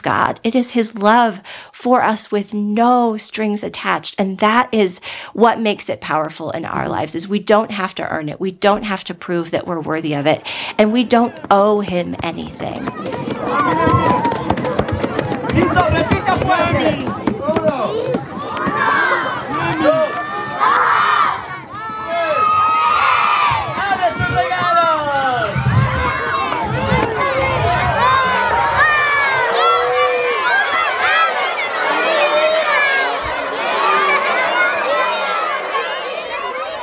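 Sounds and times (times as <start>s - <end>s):
speech: 0.0s - 14.2s, 15.6s - 17.2s
children shouting and cheering as they open gift shoeboxes: 12.8s - 36.8s.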